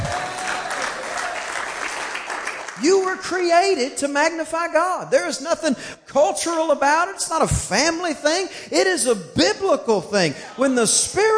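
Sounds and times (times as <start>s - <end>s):
audience applause: 0.0s - 2.8s
speech: 2.8s - 11.3s.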